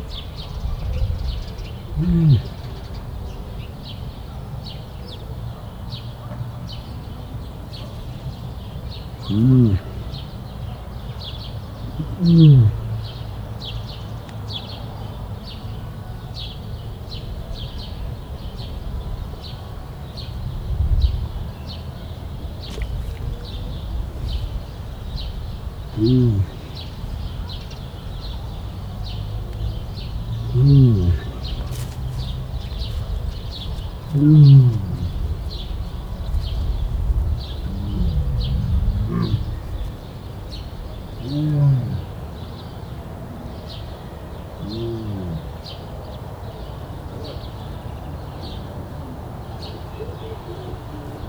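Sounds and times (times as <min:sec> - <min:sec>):
distant lion grumbling in a zoo: 0:00.0 - 0:03.3, 0:08.5 - 0:13.4, 0:20.4 - 0:46.1.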